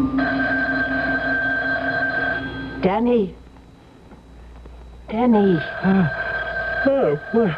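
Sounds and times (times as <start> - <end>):
telephone bell ringing: 0.2 - 2.9, 5.2 - 7.5
speech: 2.8 - 3.4, 5.1 - 6.2, 6.8 - 7.5.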